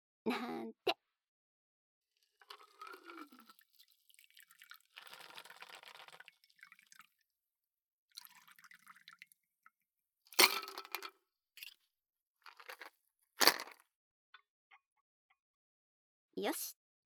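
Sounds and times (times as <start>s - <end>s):
speech: 0.2s - 0.8s, 16.4s - 16.8s
liquid poured into a glass while a drink is mixed: 2.2s - 7.2s, 8.1s - 9.4s
glass clinks and cracks while a drink is mixed: 10.4s - 11.7s.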